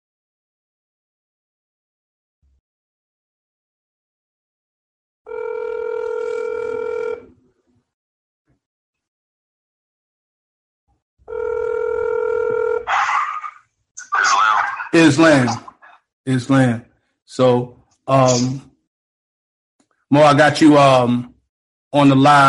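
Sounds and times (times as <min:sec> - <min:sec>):
phone ringing: 0:05.3 - 0:07.3, 0:11.3 - 0:12.9
voice talking over the phone line: 0:12.9 - 0:15.9
speech: 0:15.0 - 0:15.6, 0:16.2 - 0:18.7, 0:20.1 - 0:21.3, 0:21.9 - 0:22.4.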